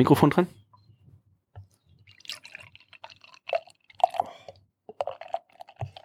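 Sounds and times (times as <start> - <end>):
speech: 0.0 - 0.6
IPA beer bubbly fizzing: 2.0 - 6.0
thick Triple Dry Hopped Quadruple IPA beer pouring into a glass: 2.0 - 6.0.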